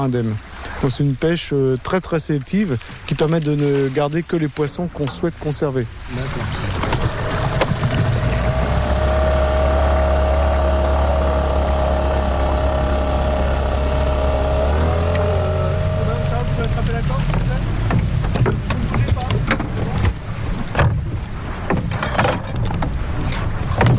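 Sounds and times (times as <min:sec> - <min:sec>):
speech: 0:00.0 - 0:06.7
professional fishing boat engine idling on the water: 0:06.0 - 0:21.7
scattered knocks and clatter: 0:16.8 - 0:23.0, 0:23.7 - 0:23.9.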